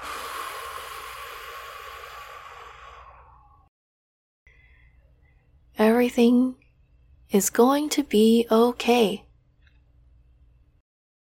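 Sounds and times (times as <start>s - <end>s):
deep exhale in a guided relaxation exercise: 0.0s - 3.7s
faint breath in: 0.0s - 3.7s, 4.5s - 5.5s
speech: 6.0s - 6.6s, 7.3s - 9.2s.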